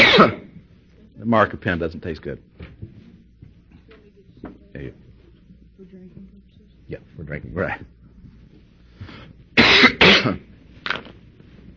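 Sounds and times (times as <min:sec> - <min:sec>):
person in a harsh coughing fit: 0:00.0 - 0:00.5, 0:09.6 - 0:10.5
speech: 0:00.2 - 0:00.4, 0:01.2 - 0:03.0, 0:04.4 - 0:05.0, 0:06.9 - 0:08.0, 0:10.2 - 0:10.5.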